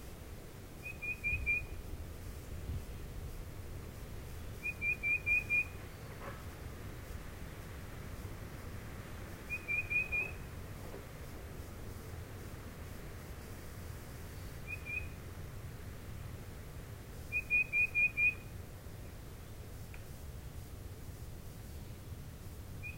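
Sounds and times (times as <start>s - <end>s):
steady low background hiss: 0.0s - 22.9s
tufted titmouse song of clear whistled notes: 0.8s - 1.8s, 4.6s - 5.8s, 9.5s - 10.4s, 14.6s - 15.2s, 17.3s - 18.5s, 22.8s - 22.9s.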